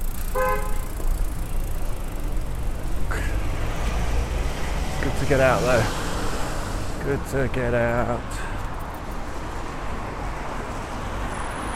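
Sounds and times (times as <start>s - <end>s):
brief sharp vehicle sound: 0.0s - 11.7s
cars passing by at a crossroads: 0.0s - 11.7s
road traffic rumble at a crossroads: 0.0s - 11.7s
car horn toot: 0.3s - 1.0s
speech: 5.3s - 6.0s, 7.0s - 8.4s.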